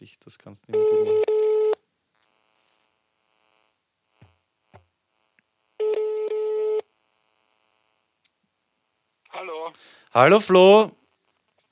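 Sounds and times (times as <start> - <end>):
speech: 0.0 - 1.4, 10.1 - 11.0
German telephone ringback tone while placing a call: 0.8 - 1.8, 5.8 - 6.9.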